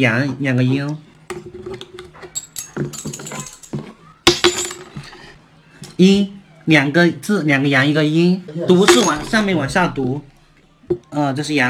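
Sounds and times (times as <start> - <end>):
speech: 0.0 - 1.4, 2.8 - 3.2, 6.0 - 10.3, 10.9 - 11.6
coins rattling and clinking shaken for divination: 2.4 - 5.0.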